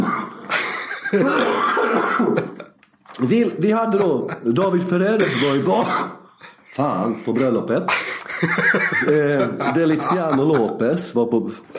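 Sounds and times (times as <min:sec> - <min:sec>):
person coughing: 0:00.0 - 0:02.7, 0:05.2 - 0:06.3
laughter: 0:00.4 - 0:02.8, 0:07.2 - 0:11.1
speech: 0:01.1 - 0:02.6, 0:03.2 - 0:06.2, 0:06.8 - 0:11.7.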